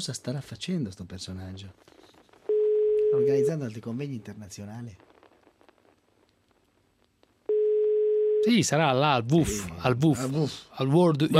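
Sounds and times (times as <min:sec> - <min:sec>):
speech: 0:00.0 - 0:02.0, 0:03.1 - 0:05.1, 0:08.4 - 0:11.3
telephone line tone while a call is being placed: 0:02.5 - 0:03.6, 0:07.5 - 0:08.6.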